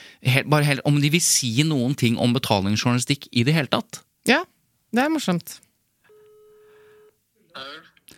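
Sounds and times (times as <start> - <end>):
speech: 0.2 - 5.7
telephone ringback tone of an outgoing call over a phone line: 6.1 - 7.2
person answering and talking on the phone: 7.5 - 8.0.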